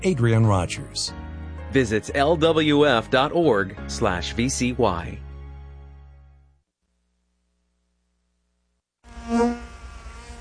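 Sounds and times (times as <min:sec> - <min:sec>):
speech: 0:00.0 - 0:05.2
bee buzzing: 0:09.0 - 0:10.3.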